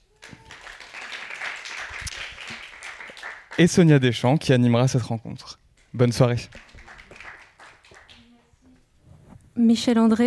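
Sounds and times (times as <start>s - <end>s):
audience applause at a cinema evening event: 0.0s - 4.0s, 5.8s - 8.3s
speech: 3.6s - 6.6s, 9.6s - 10.2s.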